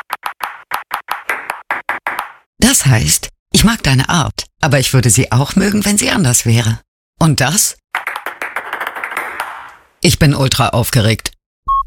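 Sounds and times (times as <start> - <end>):
table tennis ball tapping in Morse code rhythm: 0.0 - 2.4, 8.0 - 9.8
speech: 2.7 - 7.8, 10.0 - 11.4.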